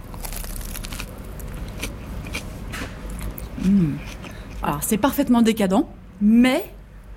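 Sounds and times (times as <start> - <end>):
biting into a crispy toasted grilled cheese sandwich: 0.0 - 4.3
crackly chewing of grilled cheese sandwich: 0.0 - 4.7
speech: 3.6 - 6.8.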